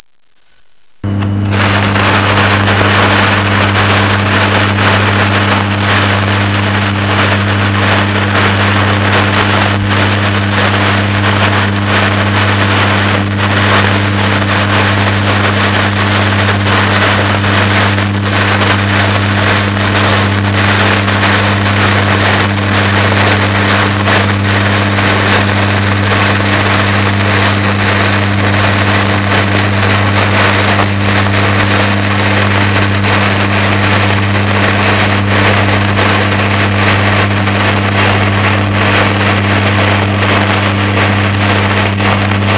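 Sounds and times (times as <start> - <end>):
fire: 1.0 - 42.5.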